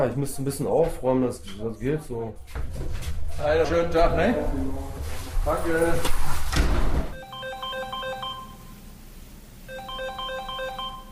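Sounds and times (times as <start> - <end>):
speech: 0.0 - 7.0
telephone ringing with a melodic electronic tone: 7.2 - 8.8, 9.7 - 11.0.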